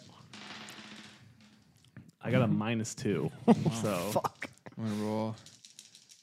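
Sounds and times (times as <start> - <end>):
dice clattering on a hard tabletop: 0.0 - 1.9, 5.1 - 6.2
speech: 2.2 - 5.5.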